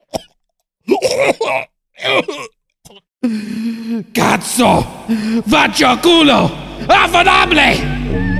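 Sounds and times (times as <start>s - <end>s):
person choking on pasta stuck in the throat: 0.0s - 3.1s
person coughing rough rasping cough: 0.9s - 3.0s
speech: 4.4s - 8.3s.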